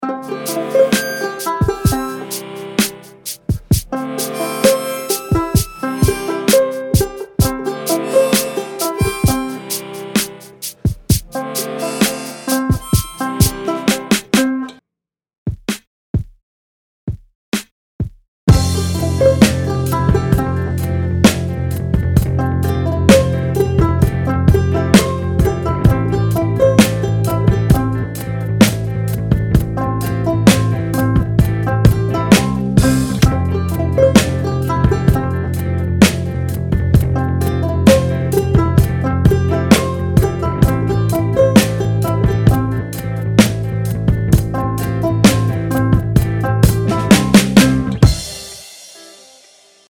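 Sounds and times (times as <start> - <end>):
harmonica hip-hop music: 0.0 - 14.7, 18.5 - 49.4.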